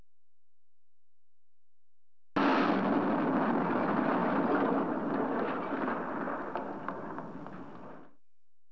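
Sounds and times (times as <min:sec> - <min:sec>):
explosion: 0:02.4 - 0:08.2.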